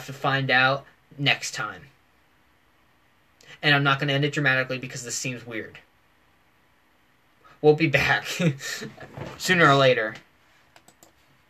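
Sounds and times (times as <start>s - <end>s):
speech: 0.0s - 1.9s, 3.6s - 5.9s, 7.6s - 10.3s
faint hiss: 0.0s - 11.4s
computer keyboard or mouse clicks: 10.7s - 11.2s.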